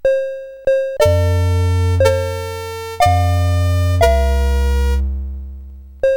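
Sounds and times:
chiptune music on SID CSG8580R5 chip: 1.0 - 6.1.

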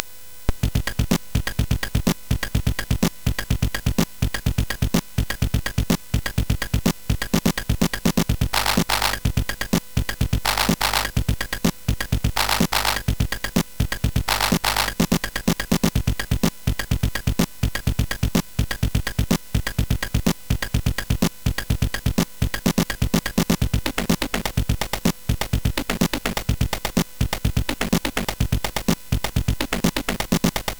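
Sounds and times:
drummy beat on CSG8580R5: 0.6 - 30.7.

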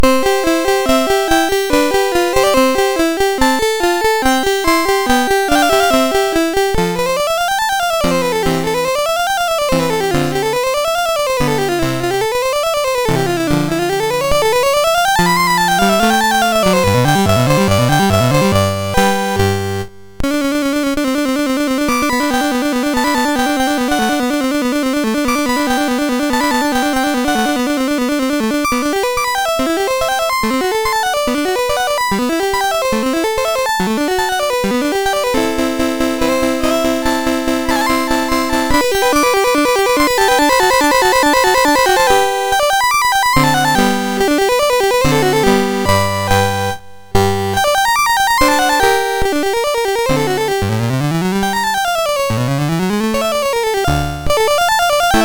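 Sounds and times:
sonata on a SID chip: 0.0 - 55.2.

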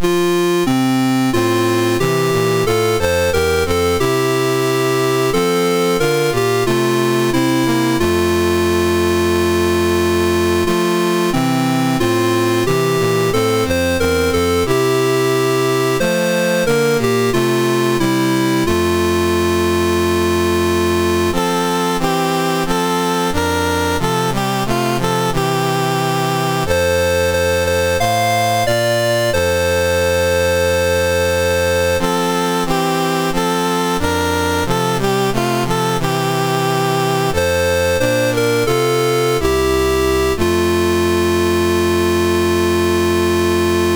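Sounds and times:
national anthem on a MOS6581R3 sound chip: 0.0 - 43.9.

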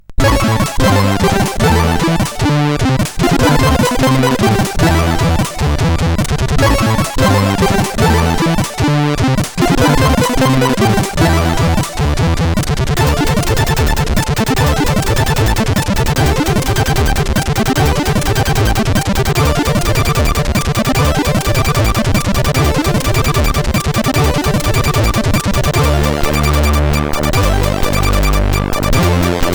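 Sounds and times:
chiptune music on CSG8580R5 SID chip: 0.2 - 29.5.

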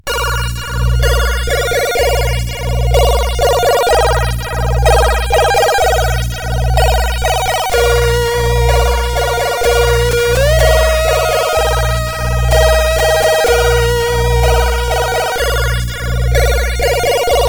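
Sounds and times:
CSG8580R5 sound chip sample: 0.3 - 17.4.

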